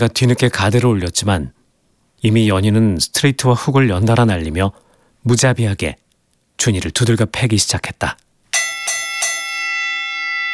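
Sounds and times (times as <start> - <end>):
speech: 0.0 - 1.6, 2.2 - 6.0, 6.6 - 8.2
boxing match bell ringing: 8.5 - 10.5.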